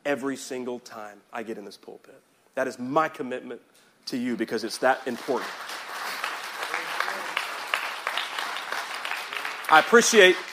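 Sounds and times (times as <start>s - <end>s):
speech: 0.1s - 5.8s, 9.7s - 10.5s
room full of people clapping: 5.1s - 10.5s.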